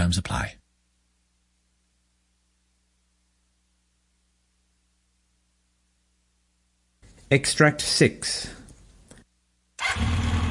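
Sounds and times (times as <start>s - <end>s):
speech: 0.1s - 0.6s, 7.3s - 8.6s
motorbike engine starting: 9.8s - 10.4s.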